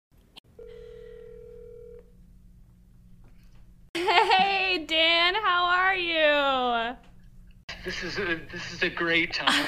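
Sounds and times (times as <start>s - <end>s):
low hum: 0.2s - 9.6s
electronic telephone line ring tone: 0.6s - 2.1s
speech: 7.9s - 9.6s.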